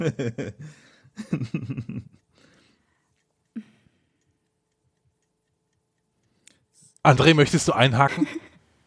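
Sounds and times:
speech: 0:00.0 - 0:02.2, 0:07.0 - 0:08.4
laughter: 0:01.2 - 0:02.2, 0:08.0 - 0:08.6
clock ticking: 0:01.2 - 0:07.5.

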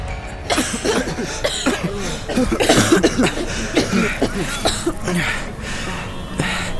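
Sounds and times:
laughter: 0:00.5 - 0:06.7
young voices coughing: 0:00.5 - 0:06.7.

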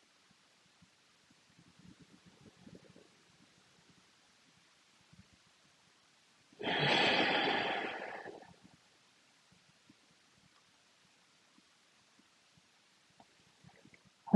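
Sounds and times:
deep breath drawn during meditation: 0:06.6 - 0:08.6.

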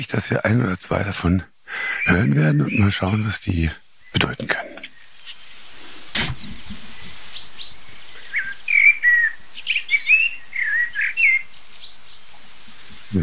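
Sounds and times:
speech: 0:00.0 - 0:04.7
common chaffinch giving agitated pink-pink calls near its nest: 0:00.9 - 0:13.2
brief thump: 0:06.1 - 0:06.8.

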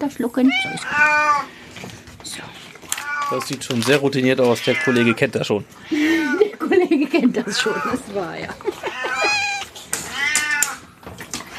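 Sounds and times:
speech: 0:00.0 - 0:02.7, 0:03.3 - 0:06.2, 0:06.8 - 0:08.8
diabetic tomcat meowing: 0:00.4 - 0:01.5, 0:02.9 - 0:03.5, 0:04.6 - 0:05.2, 0:05.8 - 0:06.5, 0:07.4 - 0:08.2, 0:08.8 - 0:10.9
laughter: 0:05.9 - 0:09.6.

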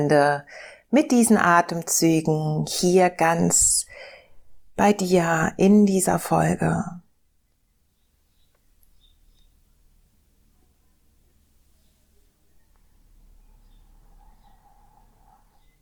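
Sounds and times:
speech: 0:00.0 - 0:03.9, 0:04.8 - 0:07.0
birds chirping: 0:07.9 - 0:09.6, 0:11.7 - 0:15.8.

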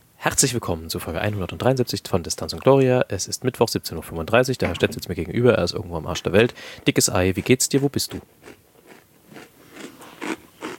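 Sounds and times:
speech: 0:00.2 - 0:08.6
person chewing food with wet crunchy bites: 0:07.4 - 0:10.7.

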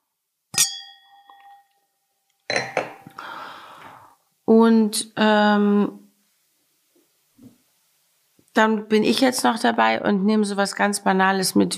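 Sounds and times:
single bright glass strike ringing: 0:00.5 - 0:01.9, 0:02.5 - 0:03.0
champagne glasses clinking: 0:00.6 - 0:01.8
speech: 0:04.5 - 0:06.0, 0:08.6 - 0:11.7.

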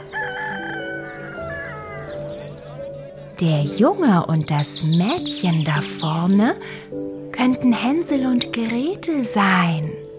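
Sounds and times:
rooster crowing: 0:00.0 - 0:02.4
speech: 0:03.4 - 0:10.0.

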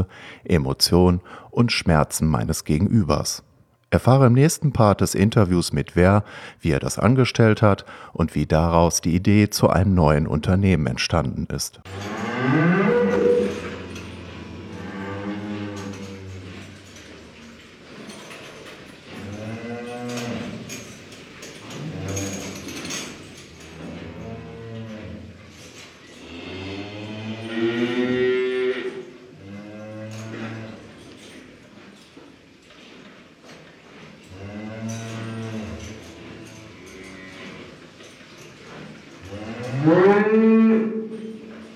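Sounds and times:
speech: 0:00.0 - 0:13.0
dairy cows mooing: 0:11.9 - 0:17.6, 0:19.1 - 0:21.0, 0:21.6 - 0:31.1, 0:34.3 - 0:37.8, 0:39.2 - 0:41.7.

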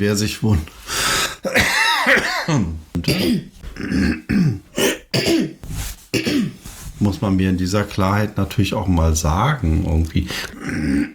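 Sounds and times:
speech: 0:00.0 - 0:04.6, 0:07.2 - 0:11.1
person clearing throat with gravelly bursts and grunts: 0:01.4 - 0:05.6, 0:06.2 - 0:06.6, 0:10.5 - 0:11.1.

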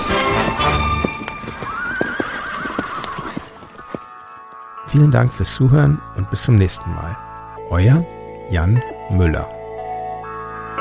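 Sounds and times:
horse hooves clip-clopping: 0:00.0 - 0:05.4
horse neighing: 0:01.5 - 0:03.7
speech: 0:04.9 - 0:09.6.

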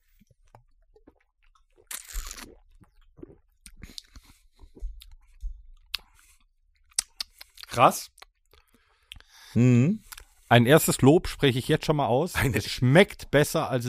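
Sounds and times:
crunching and chewing of a crunchy bite: 0:00.1 - 0:09.2
speech: 0:07.8 - 0:08.2, 0:09.6 - 0:13.8.

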